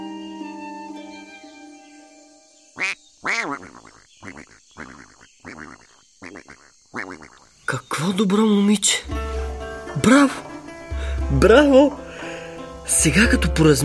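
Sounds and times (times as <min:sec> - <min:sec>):
goose honking: 0:02.8 - 0:07.4
speech: 0:03.3 - 0:04.5, 0:08.0 - 0:09.2, 0:10.0 - 0:10.5, 0:11.3 - 0:12.0, 0:12.9 - 0:13.8.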